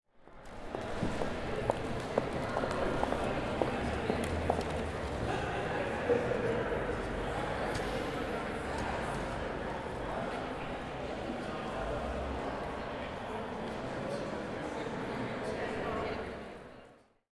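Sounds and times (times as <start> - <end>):
lobby ambience: 0.3 - 17.0.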